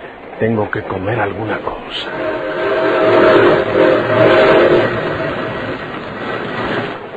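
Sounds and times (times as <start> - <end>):
moving train rolling rumble: 0.0 - 7.1
speech: 0.4 - 5.0
moving train whistle blowing: 2.0 - 5.5.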